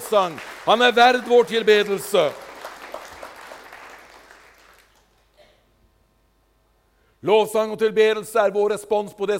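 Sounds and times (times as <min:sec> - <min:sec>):
crowd applause: 0:00.0 - 0:05.3
speech: 0:00.1 - 0:02.4, 0:07.2 - 0:09.3.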